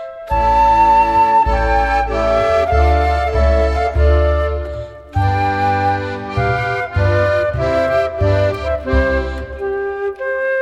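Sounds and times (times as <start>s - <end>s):
folk music group playing: 0.3s - 10.4s.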